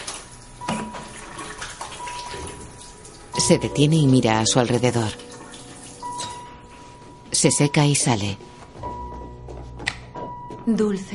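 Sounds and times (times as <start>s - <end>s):
water running from a kitchen tap: 0.0s - 6.4s
speech: 3.5s - 5.3s, 7.4s - 8.6s, 10.7s - 11.1s.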